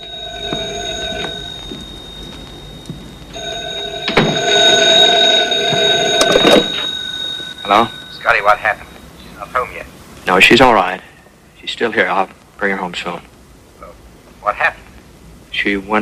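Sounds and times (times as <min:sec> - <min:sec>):
telephone ringing in a bedroom: 0:00.0 - 0:09.2
speech: 0:07.7 - 0:08.8, 0:10.3 - 0:11.0, 0:11.8 - 0:13.3, 0:14.4 - 0:14.8, 0:15.6 - 0:16.0.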